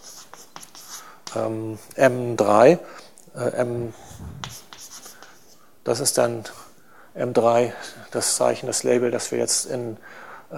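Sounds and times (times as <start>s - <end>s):
handwriting scratches of a writing tool: 0.0s - 1.1s, 4.4s - 5.6s
speech: 1.3s - 4.6s, 5.8s - 6.6s, 7.2s - 10.5s.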